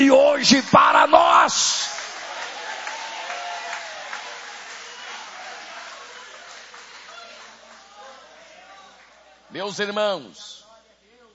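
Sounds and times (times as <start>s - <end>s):
speech: 0.0s - 1.7s, 9.5s - 10.6s
large audience applauding: 0.8s - 9.4s
voices mixed into the crowd noise: 7.0s - 9.8s.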